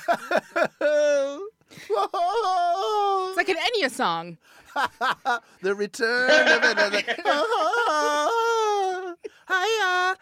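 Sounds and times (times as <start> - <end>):
speech: 0.0 - 0.8, 3.5 - 8.2
laughter: 0.0 - 1.2, 4.7 - 5.5, 6.1 - 10.0
woman giving long strained wails: 0.8 - 3.4, 6.3 - 10.1.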